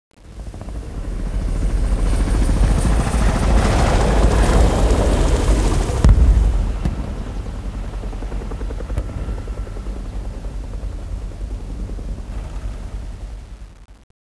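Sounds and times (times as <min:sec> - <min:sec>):
helicopter flyby: 0:00.2 - 0:13.7.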